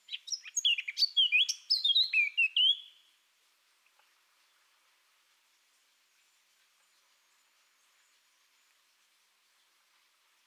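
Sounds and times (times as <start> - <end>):
Eurasian blackcap Sylvia atricapilla singing: 0.1 - 2.8.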